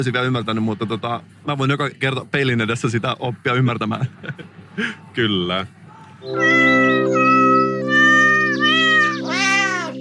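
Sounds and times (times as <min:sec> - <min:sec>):
speech: 0:00.0 - 0:07.2
cat yowling: 0:06.3 - 0:09.9.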